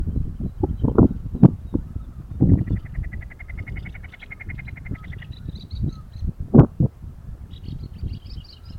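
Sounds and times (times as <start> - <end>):
low rumbling noise: 0.0 - 8.7
snipe call of stuttering ticks: 2.5 - 5.3.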